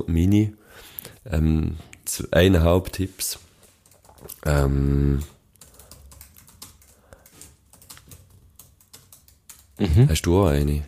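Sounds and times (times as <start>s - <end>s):
speech: 0.0s - 3.5s, 4.2s - 5.4s, 9.8s - 10.8s
rapid typing on a computer keyboard during an online search: 3.6s - 4.5s, 5.3s - 9.8s.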